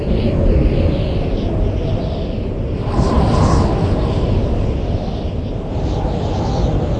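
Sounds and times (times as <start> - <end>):
wind: 0.0 - 6.9.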